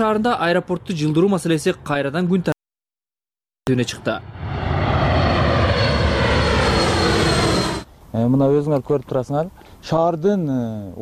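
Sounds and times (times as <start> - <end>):
speech: 0.0 - 2.5, 3.7 - 4.6, 8.1 - 11.0
airplane flying over the city of Batken: 4.2 - 7.9.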